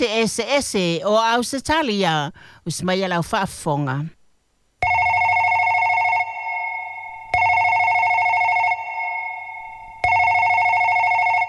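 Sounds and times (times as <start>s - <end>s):
speech: 0.0s - 4.2s
telephone ringing: 4.8s - 11.4s.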